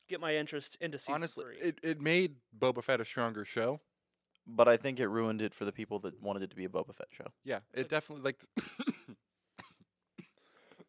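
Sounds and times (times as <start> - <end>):
speech: 0.1 - 3.9, 4.5 - 8.9
harsh coughing fit: 8.6 - 10.8.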